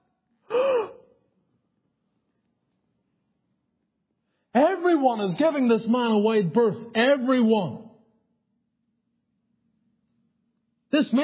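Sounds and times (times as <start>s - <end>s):
person gasping in imitated shock: 0.5s - 1.1s
speech: 4.6s - 7.8s, 10.9s - 11.2s.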